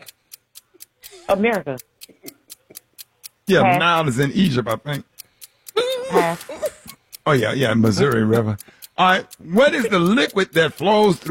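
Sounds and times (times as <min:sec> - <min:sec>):
game show clock ticking: 0:00.0 - 0:11.2
speech: 0:01.3 - 0:01.9, 0:03.5 - 0:05.1, 0:06.1 - 0:11.2
laughter: 0:03.5 - 0:05.0, 0:05.8 - 0:11.2.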